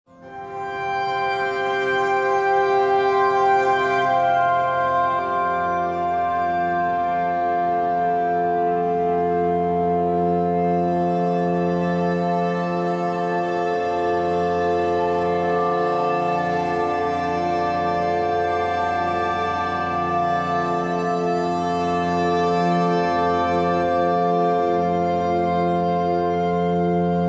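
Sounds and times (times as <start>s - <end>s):
rustic bowed cello in F major: 0.2s - 27.2s.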